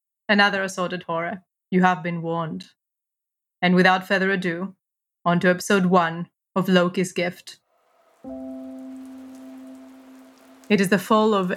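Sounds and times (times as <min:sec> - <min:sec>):
speech: 0:00.3 - 0:02.8, 0:03.6 - 0:07.6, 0:08.2 - 0:08.7, 0:10.7 - 0:11.5
heavy rain hissing: 0:07.7 - 0:11.5.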